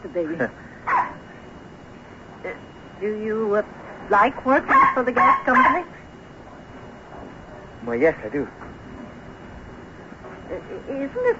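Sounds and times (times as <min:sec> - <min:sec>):
speech: 0:00.1 - 0:01.0, 0:03.0 - 0:06.0, 0:07.8 - 0:08.7, 0:10.5 - 0:11.3
female dog barking: 0:00.9 - 0:01.2, 0:04.7 - 0:05.9.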